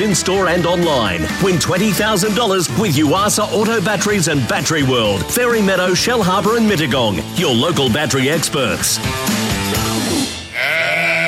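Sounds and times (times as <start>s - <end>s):
speech: 0.0s - 10.2s
sheep or goat bleating: 10.5s - 11.2s.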